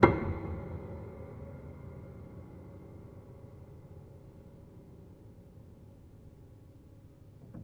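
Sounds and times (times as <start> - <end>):
piano hammer percussion with pedal: 0.0 - 4.7.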